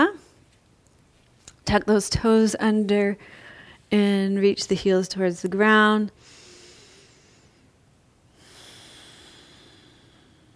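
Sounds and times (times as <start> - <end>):
speech: 1.7 - 6.4
soft breathing during a deep yoga squat: 3.2 - 3.9, 6.2 - 10.5.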